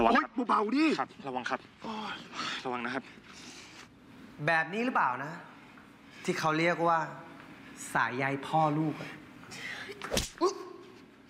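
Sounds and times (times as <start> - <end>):
speech: 0.0 - 3.5, 4.4 - 5.5, 6.2 - 7.2, 7.8 - 10.7
faint hum: 0.0 - 11.2
slap: 10.0 - 10.4.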